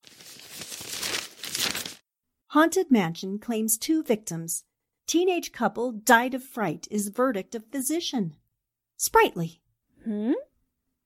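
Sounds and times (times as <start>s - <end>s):
newspaper pages rustling and crinkling: 0.0s - 2.0s
speech: 2.5s - 8.4s, 9.0s - 10.5s.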